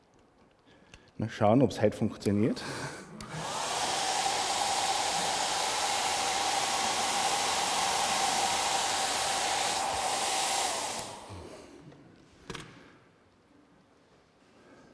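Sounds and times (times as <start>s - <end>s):
speech: 1.2s - 3.0s
hair dryer blowing air: 3.2s - 11.8s.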